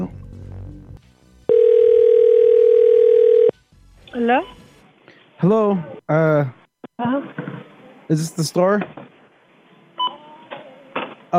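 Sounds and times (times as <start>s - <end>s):
telephone ringing tone on an outgoing call: 1.5s - 3.5s
speech: 4.3s - 4.6s, 5.4s - 9.0s.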